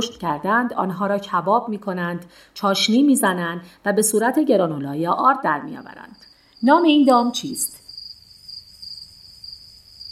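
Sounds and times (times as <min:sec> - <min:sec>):
speech: 0:00.0 - 0:07.8
chorus of crickets chirping at a commercial cricket farm in Austin, Texas: 0:05.6 - 0:10.1.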